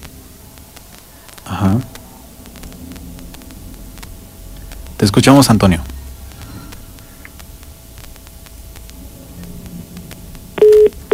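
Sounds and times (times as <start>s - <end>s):
speech: 1.5s - 1.9s, 5.0s - 5.9s
telephone line tone after a dropped phone call: 10.6s - 11.1s.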